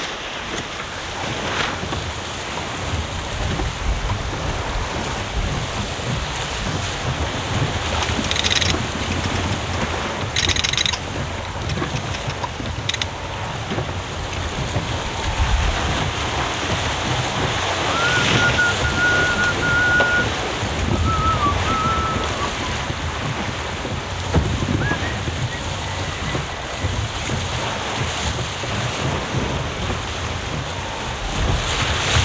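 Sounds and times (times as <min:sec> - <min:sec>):
water rushing along a sailboat hull through small waves: 0:00.0 - 0:32.2
sailboat rigging creaking and clicking: 0:07.4 - 0:13.6, 0:23.9 - 0:24.6.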